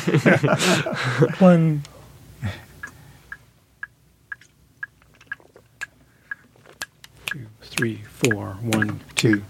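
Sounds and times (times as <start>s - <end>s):
laughter: 0.0s - 1.4s
speech: 0.0s - 2.6s, 7.8s - 9.4s
metronome clicking at 120 beats per minute: 6.3s - 9.4s.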